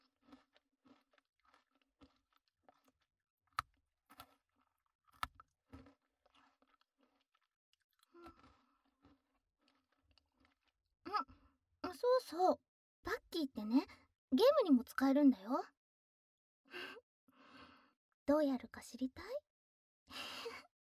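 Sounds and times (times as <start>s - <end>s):
crunchy stick snack being chewed: 0.0s - 10.8s
speech: 12.2s - 15.8s, 18.3s - 19.4s.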